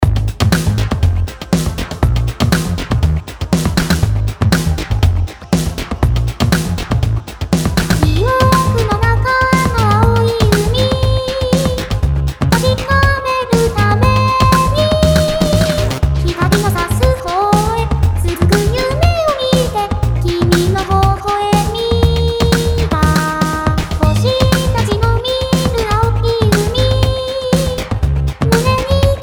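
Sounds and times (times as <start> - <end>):
drum sounds: 0.0 - 29.2.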